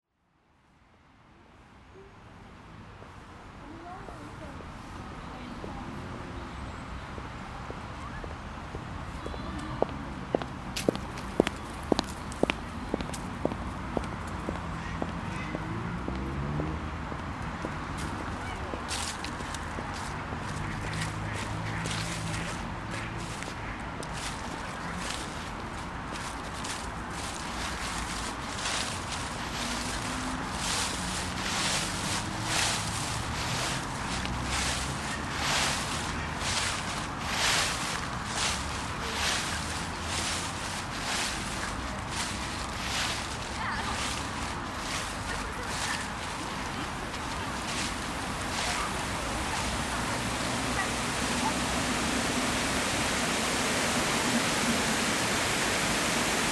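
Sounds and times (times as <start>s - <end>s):
park soundscape: 0.1s - 56.4s.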